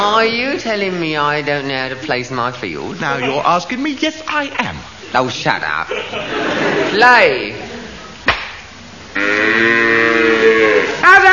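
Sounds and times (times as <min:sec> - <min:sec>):
speech: 0:00.2 - 0:07.7
laughter: 0:02.9 - 0:03.7, 0:04.4 - 0:08.2
sharp knock: 0:08.3 - 0:08.6
cow letting out a loud sustained moo: 0:09.2 - 0:11.0.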